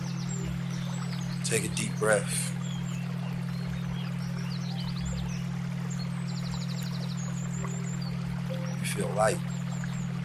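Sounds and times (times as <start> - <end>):
birds chirping in quick trills: 0.0 - 10.2
constant low hum: 0.0 - 10.2
speech: 1.5 - 2.6, 9.0 - 9.5.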